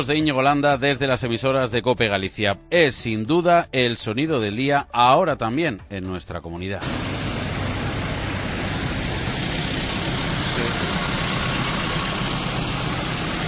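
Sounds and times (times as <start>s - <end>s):
speech: 0.0s - 7.2s
many tractor engines idling together at a protest gathering in Pedrafita, Lugo, Galicia: 6.8s - 13.4s.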